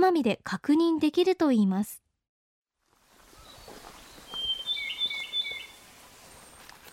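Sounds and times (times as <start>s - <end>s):
speech: 0.1s - 2.0s
Ryukyu robin calling in a subtropical forest on Amami, Japan: 3.4s - 6.6s.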